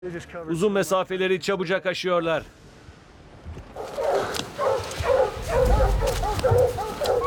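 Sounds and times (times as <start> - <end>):
speech: 0.0 - 2.7
dogs barking and yelping: 3.8 - 7.2.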